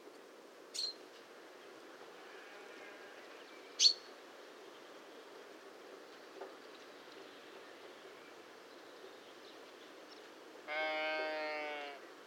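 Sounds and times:
quiet background noise: 0.0s - 12.2s
Common chaffinch sharp high single-note calls: 0.8s - 1.0s, 3.8s - 4.1s.

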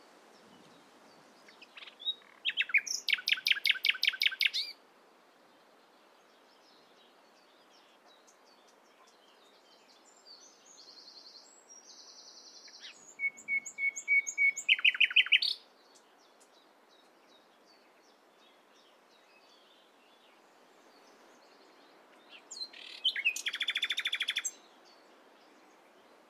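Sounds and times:
faint nightingale chirps: 0.4s - 4.8s, 5.5s - 26.2s
Common nightingale Luscinia megarhynchos whistled song: 1.5s - 4.8s, 8.2s - 17.9s, 22.2s - 25.0s.

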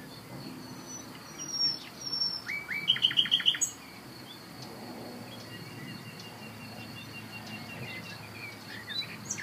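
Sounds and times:
faint high background calls: 0.0s - 4.5s, 5.3s - 9.4s
common nightingale Luscinia megarhynchos singing whistles and repeated notes: 0.7s - 3.8s, 5.4s - 9.4s.

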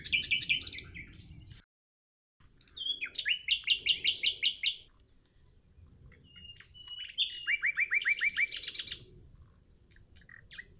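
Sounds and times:
common nightingale (Luscinia megarhynchos) singing fast rattling trills: 0.0s - 1.6s, 2.4s - 9.2s, 9.9s - 10.7s.

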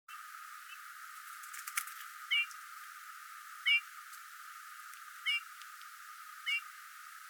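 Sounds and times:
Eurasian bullfinch Pyrrhula pyrrhula calling with soft piping whistles: 3.6s - 3.9s, 5.2s - 5.5s, 6.4s - 6.7s.

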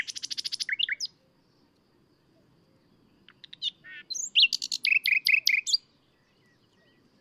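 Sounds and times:
Common nightingale singing: 0.0s - 7.1s.

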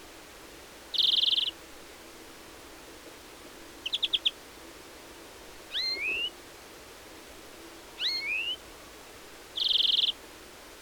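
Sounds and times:
faint background hiss: 0.0s - 10.8s
European greenfinch (Chloris chloris) calls with whistled double notes and buzzy note: 0.9s - 1.6s, 3.8s - 4.4s, 5.7s - 6.3s, 8.0s - 8.6s, 9.6s - 10.2s.

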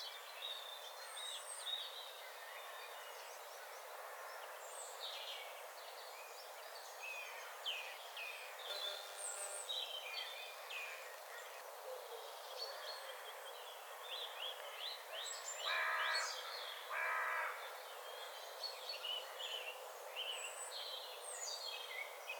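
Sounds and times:
chorus of small songbirds chirping and trilling: 0.0s - 22.3s
Carrion crow cawing, Corvus corone: 15.7s - 16.3s, 16.9s - 17.6s.

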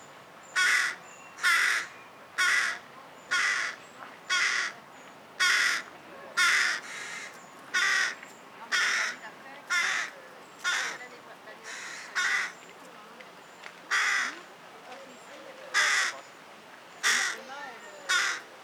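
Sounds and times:
carrion crow Corvus corone cawing: 0.6s - 4.8s, 5.4s - 11.0s, 11.6s - 12.6s, 13.9s - 14.4s, 15.7s - 16.2s, 17.0s - 17.5s, 18.1s - 18.5s.

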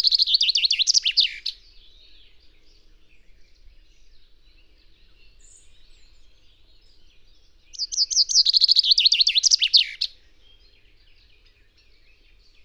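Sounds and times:
common chaffinch Fringilla coelebs singing a fast bright trill: 0.0s - 2.4s, 5.2s - 12.6s.

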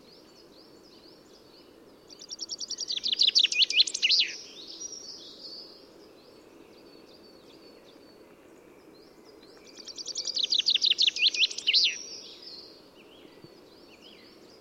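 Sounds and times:
common chaffinch Fringilla coelebs singing: 2.1s - 5.7s, 9.4s - 14.5s.

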